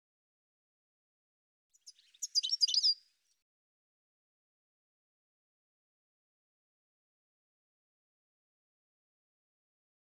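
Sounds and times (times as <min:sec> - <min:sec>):
bird chirping and twittering: 0:01.8 - 0:03.0.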